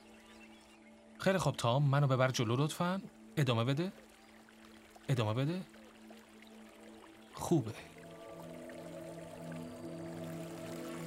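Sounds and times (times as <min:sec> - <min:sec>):
speech: 0:01.2 - 0:04.0, 0:05.1 - 0:05.8, 0:07.4 - 0:07.9
floodwater flowing into a river delta: 0:02.2 - 0:11.0.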